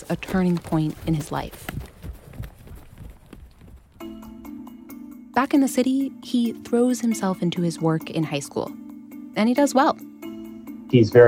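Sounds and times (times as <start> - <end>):
speech: 0.0 - 1.8, 5.4 - 8.8, 9.4 - 10.1, 10.9 - 11.2
ridden horse hooves clip-clopping: 0.0 - 4.4.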